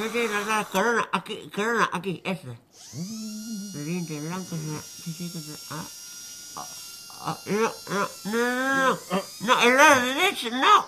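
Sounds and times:
high-pitched dental drill whining: 0.0 - 1.0, 2.7 - 10.8
speech: 0.0 - 6.0, 6.6 - 10.8
person groaning and crying out as a tooth is pulled: 7.5 - 9.3.

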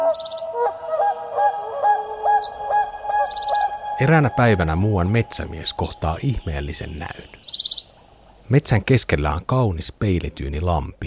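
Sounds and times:
swan calling with honking trumpet-like notes: 0.0 - 8.4
faint high chirps: 1.5 - 8.4
speech: 4.0 - 7.4, 8.5 - 11.0.

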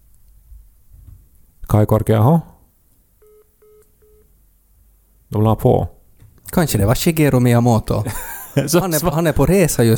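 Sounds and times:
faint hiss: 0.0 - 9.9
speech: 1.8 - 2.5, 5.3 - 9.9
electronic phone call tones on speakerphone from Croatia: 3.2 - 4.3
laughter: 8.0 - 9.4.

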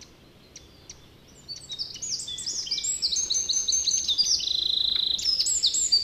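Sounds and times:
Eurasian wren singing: 0.0 - 6.0.

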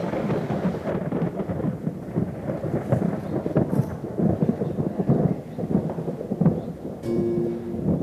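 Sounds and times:
deep continuous rolling thunder: 0.0 - 8.0
steady rain hissing: 0.0 - 8.0
brief tonal hum: 7.0 - 8.0.

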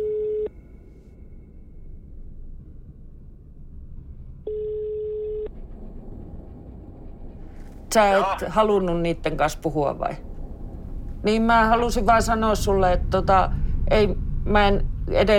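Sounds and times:
telephone ringback tone: 0.0 - 0.5, 4.5 - 5.5
low rumble: 0.0 - 15.3
speech: 7.9 - 10.3, 11.2 - 15.3.

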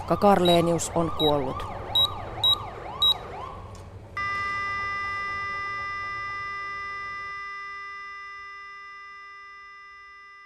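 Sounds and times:
ambulance siren wailing in rising and falling sweeps: 0.0 - 8.1
speech: 0.1 - 1.8
sharp beeps: 0.4 - 3.2, 4.2 - 10.4
steady ringing tone: 4.2 - 10.4.

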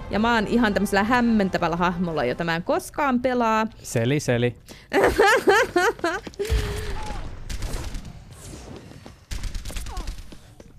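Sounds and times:
speech: 0.1 - 6.9
laughter: 5.0 - 7.0
video game gunfire bursts: 6.4 - 10.7.

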